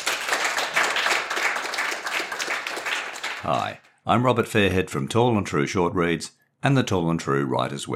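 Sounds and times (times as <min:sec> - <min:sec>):
theatre audience applauding: 0:00.0 - 0:03.8
speech: 0:03.4 - 0:07.9.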